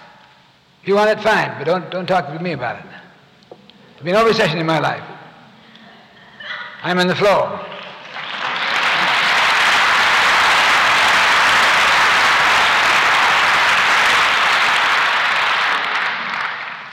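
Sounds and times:
speech: 0.8s - 3.0s, 4.0s - 5.1s, 6.8s - 7.7s
audience applause: 7.6s - 16.9s.

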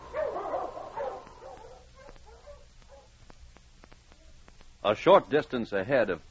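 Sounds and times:
sled dog barking on a mountain trail: 0.0s - 3.1s
speech: 4.8s - 6.2s.

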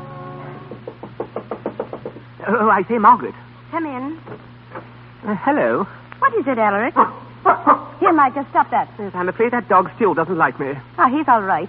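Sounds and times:
low steady hum: 0.0s - 11.6s
nervous knocking on a door: 0.6s - 2.3s, 4.2s - 4.9s
speech: 2.5s - 4.5s, 5.2s - 11.6s.

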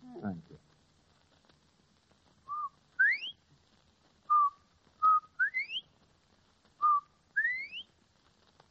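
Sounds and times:
woman whistling an imitation of a bobwhite quail call: 2.5s - 3.4s, 4.3s - 5.8s, 6.8s - 7.9s.

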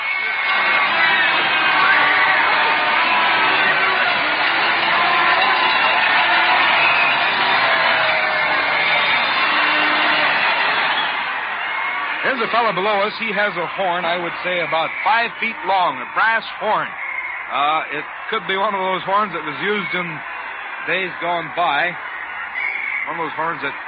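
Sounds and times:
large crowd cheering and shouting: 0.0s - 23.8s
speech: 12.5s - 22.1s, 23.1s - 23.8s.

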